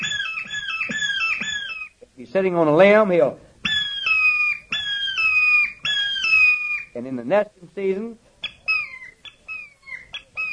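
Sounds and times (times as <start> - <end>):
hawk call blown on a handheld bird caller: 0.0 - 2.0, 3.6 - 7.0, 8.4 - 10.5
speech: 2.3 - 3.4, 7.0 - 8.2.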